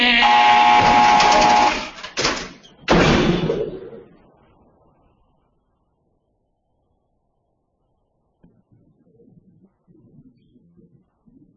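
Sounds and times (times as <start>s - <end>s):
heavy steel door onto a tier grinding open electrically: 0.6s - 3.6s.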